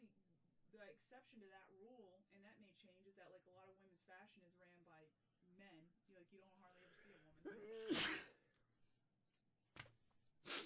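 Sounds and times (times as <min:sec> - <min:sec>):
speech: 0:00.8 - 0:08.4
person sneezing: 0:06.8 - 0:08.4, 0:10.5 - 0:10.6.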